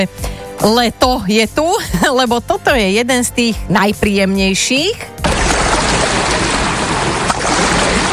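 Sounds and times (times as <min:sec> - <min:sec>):
speech: 0:00.0 - 0:05.2
sea waves: 0:05.2 - 0:08.1.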